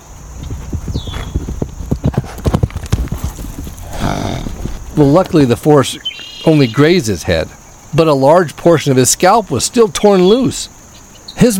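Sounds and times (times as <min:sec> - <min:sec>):
horse hooves clip-clopping: 0:00.0 - 0:06.5
speech: 0:05.0 - 0:10.8, 0:11.4 - 0:11.5.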